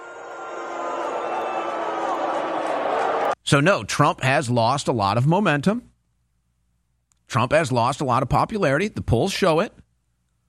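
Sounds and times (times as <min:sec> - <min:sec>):
dense stadium crowd booing: 0:00.0 - 0:03.4
speech: 0:03.5 - 0:05.9, 0:07.3 - 0:09.8.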